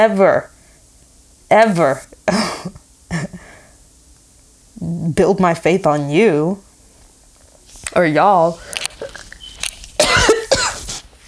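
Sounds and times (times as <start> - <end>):
speech: 0.0 - 0.6, 1.5 - 2.8, 4.8 - 6.7, 7.9 - 8.8
loud harsh coughs: 10.0 - 11.0.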